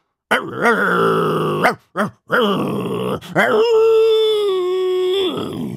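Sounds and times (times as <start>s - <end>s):
woman imitating dog growls and snarling howl: 0.4s - 3.8s, 5.0s - 5.7s.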